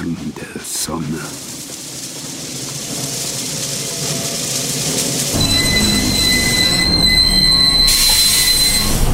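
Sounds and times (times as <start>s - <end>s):
low rolling rumble of train: 0.0s - 9.1s
speech: 0.1s - 1.5s
train wheels squealing on straight rails as the train stops: 1.4s - 9.1s.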